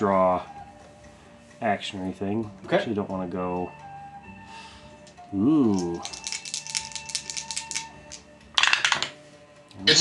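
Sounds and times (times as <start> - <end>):
speech: 0.0 - 0.6, 1.6 - 3.8, 5.3 - 6.2, 9.8 - 9.9
dice rolling on a table: 5.7 - 9.1.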